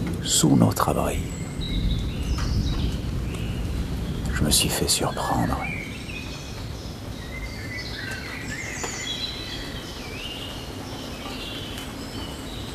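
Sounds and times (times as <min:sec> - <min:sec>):
low rumbling of an arriving thunderstorm: 0:00.0 - 0:07.8
several birds chirping and twittering: 0:00.0 - 0:12.7
speech: 0:00.3 - 0:01.8, 0:04.4 - 0:05.8.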